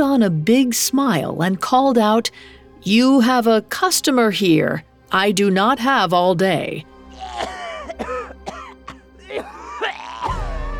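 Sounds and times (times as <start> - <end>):
speech: 0.0 - 8.1
person in a harsh coughing fit: 7.1 - 10.4.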